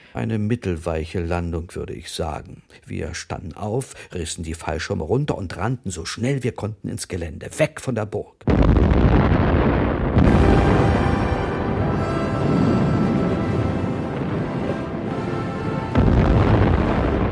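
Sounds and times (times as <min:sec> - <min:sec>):
speech: 0:00.1 - 0:09.3
gunpowder magazine in a castle exploding: 0:08.5 - 0:17.3
rumbling and crackling debris from gunpowder magazine explosion: 0:08.5 - 0:17.3.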